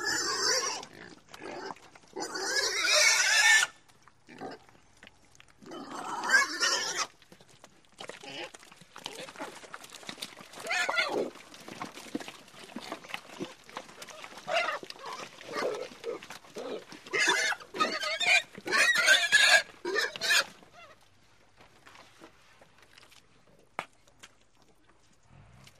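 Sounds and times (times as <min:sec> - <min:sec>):
pig squealing in harsh bursts: 0:00.0 - 0:04.6, 0:05.6 - 0:07.1, 0:10.6 - 0:11.3, 0:14.1 - 0:21.0.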